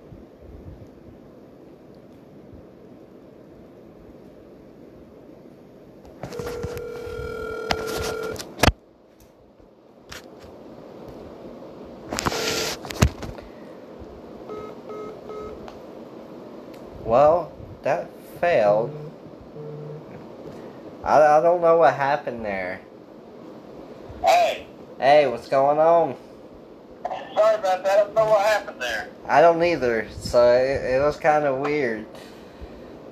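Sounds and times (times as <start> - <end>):
steady breezy hiss: 0.0 - 33.1
faint repeating telephone ringback tone: 6.3 - 8.4, 12.3 - 12.8, 14.5 - 15.6, 18.8 - 20.1
telephone dialing tones: 6.3 - 8.4, 14.5 - 15.6
speech: 29.6 - 32.2.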